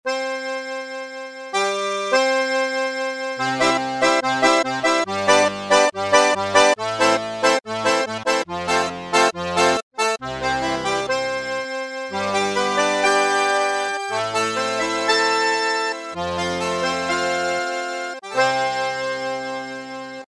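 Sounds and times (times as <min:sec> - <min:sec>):
G70 accordion: 0:00.0 - 0:20.3.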